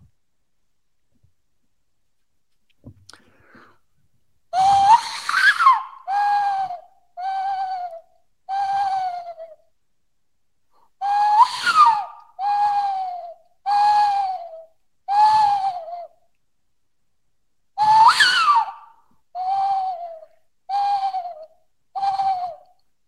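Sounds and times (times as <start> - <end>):
person imitating a western screech owl call: 4.6 - 9.6, 11.0 - 16.1, 19.4 - 21.4, 22.0 - 22.7.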